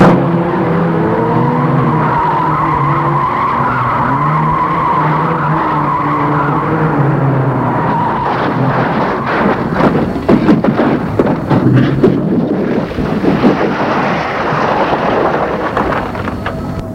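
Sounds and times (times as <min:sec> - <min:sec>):
car crashing: 0:00.0 - 0:16.9
car tires skidding as a car swerves: 0:00.0 - 0:16.9
debris clattering: 0:08.2 - 0:16.9.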